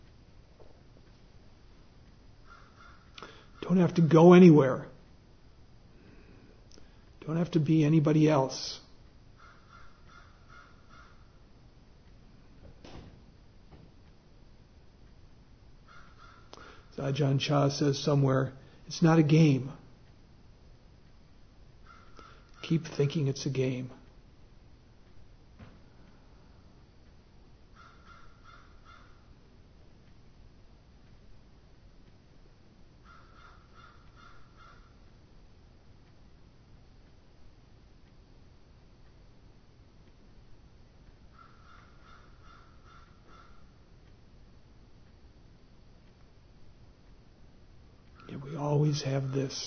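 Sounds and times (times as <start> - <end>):
steady hiss: 0.0 - 49.6
birds cawing crow-like outside the window: 2.4 - 3.6, 9.4 - 11.4, 15.8 - 16.9, 21.8 - 22.6, 27.7 - 29.3, 33.0 - 35.1, 41.3 - 43.8
speech: 3.7 - 4.9, 7.3 - 8.8, 17.0 - 19.8, 22.7 - 24.0, 49.1 - 49.6.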